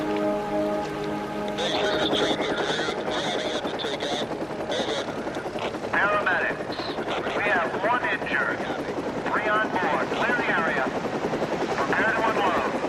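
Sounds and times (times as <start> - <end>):
shifting tonal sounds: 0.0 - 7.8
helicopter flying low over a river: 0.0 - 12.8.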